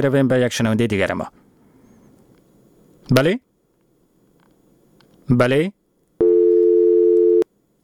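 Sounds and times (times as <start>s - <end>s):
speech: 0.0s - 1.4s, 3.1s - 3.5s, 5.3s - 5.8s
telephone busy signal after a dropped call: 6.2s - 7.4s.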